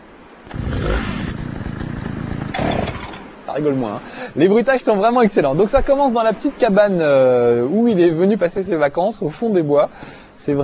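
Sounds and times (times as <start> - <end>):
video game chainsaw starting and revving: 0.5 - 3.3
speech: 3.6 - 10.6.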